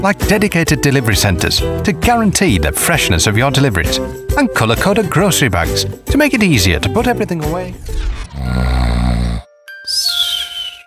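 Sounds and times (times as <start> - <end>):
speech: 0.0 - 8.5
person snoring while sleeping: 8.0 - 9.5.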